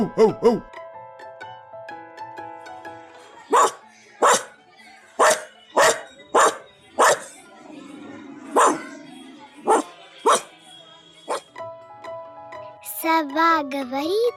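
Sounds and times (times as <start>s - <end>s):
speech: 0.0s - 0.7s, 13.2s - 14.3s
dog barking: 3.5s - 4.6s, 5.2s - 7.4s, 8.5s - 8.9s, 9.6s - 10.5s.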